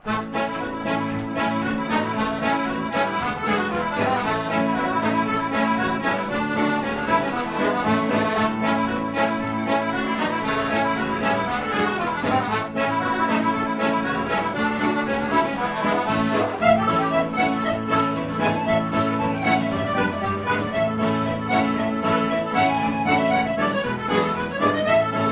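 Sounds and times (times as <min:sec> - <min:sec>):
Irish band playing a reel live: 0:00.0 - 0:25.3.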